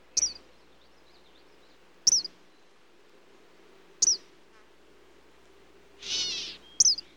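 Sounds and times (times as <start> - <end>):
Eastern kingbird uttering piercing sputtered call notes: 0.2 - 0.4, 4.0 - 4.2, 6.0 - 7.1.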